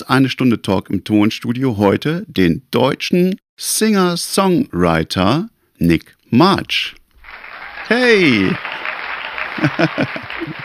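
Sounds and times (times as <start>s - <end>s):
speech: 0.0s - 7.0s, 7.9s - 8.7s, 9.6s - 10.6s
applause sampled from a concert recording: 7.2s - 10.6s
laughter: 8.0s - 10.6s.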